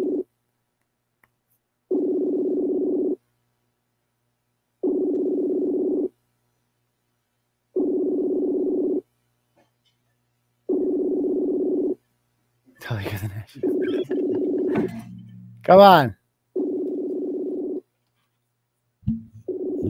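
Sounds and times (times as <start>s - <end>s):
ringback tone of an unanswered phone call: 1.9s - 3.2s, 4.8s - 6.1s, 7.8s - 9.0s, 10.7s - 12.0s, 13.6s - 15.0s, 16.6s - 17.8s, 19.4s - 19.8s
speech: 12.9s - 16.2s
laughter: 13.0s - 15.0s.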